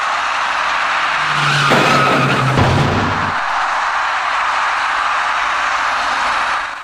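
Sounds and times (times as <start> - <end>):
road noise at an intersection: 0.0 - 6.8
pink car colliding with electric bicycle rider at intersection, screeching and skidding: 0.2 - 3.7.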